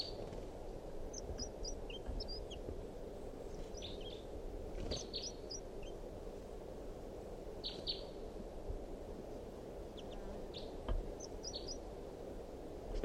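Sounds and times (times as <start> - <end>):
steady low rumble of outdoor noise: 0.0 - 13.0
wild bird giving sharp short alarm calls: 1.1 - 2.6, 3.4 - 4.2, 4.8 - 6.0, 9.9 - 11.8.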